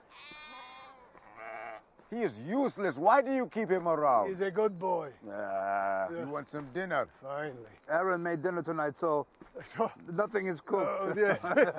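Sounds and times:
sheep bleating: 0.0s - 1.8s
speech: 2.1s - 11.7s
laughter: 10.7s - 11.7s.

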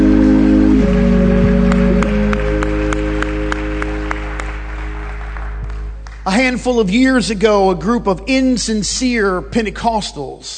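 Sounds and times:
seated audience applause: 0.0s - 6.4s
sustained organ chords: 0.0s - 10.5s
speech: 6.3s - 10.5s.

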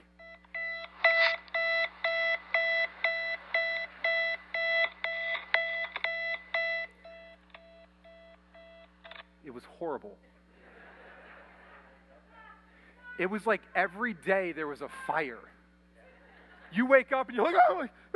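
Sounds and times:
old-fashioned alarm clock ringing: 0.2s - 8.8s
speech: 9.6s - 10.4s, 13.2s - 15.6s, 16.7s - 18.1s
laughter: 10.3s - 12.6s, 16.0s - 18.1s.

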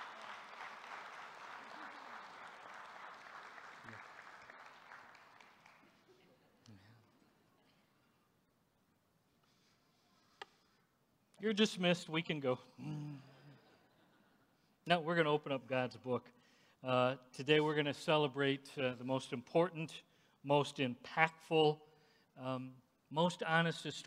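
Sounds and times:
church audience applause: 0.0s - 6.1s
speech: 11.4s - 13.1s, 14.9s - 24.0s.

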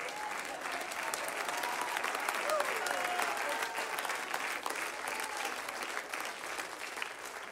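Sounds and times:
church congregation clapping: 0.0s - 7.5s.

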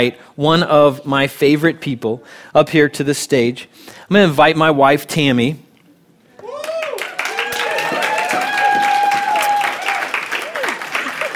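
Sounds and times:
speech: 0.0s - 5.6s
whooping voices: 6.3s - 11.3s
large audience applause: 6.5s - 11.3s.

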